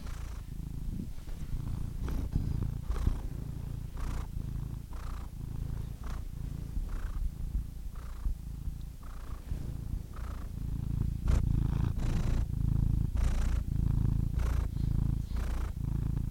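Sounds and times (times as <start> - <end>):
rustling: 0.0 - 12.5
domestic cat purring in a steady low rumble: 0.0 - 16.3.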